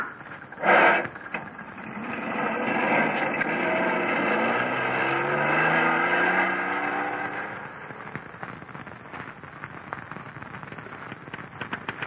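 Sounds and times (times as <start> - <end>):
car engine revving and driving off: 0.2 - 9.3.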